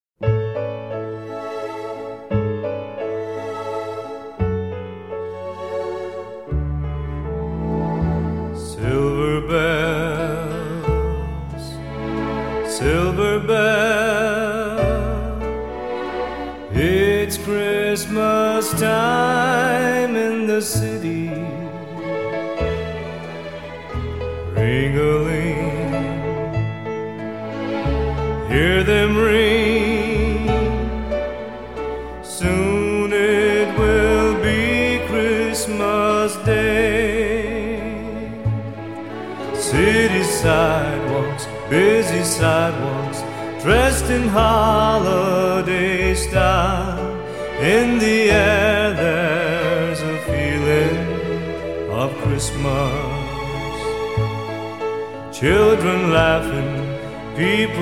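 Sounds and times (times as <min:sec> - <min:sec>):
orchestra playing: 0:00.2 - 0:57.8
man singing: 0:08.6 - 0:11.9, 0:12.6 - 0:15.6, 0:16.7 - 0:22.2, 0:24.4 - 0:26.9, 0:28.4 - 0:31.4, 0:32.2 - 0:38.5, 0:39.4 - 0:54.4, 0:55.3 - 0:57.8.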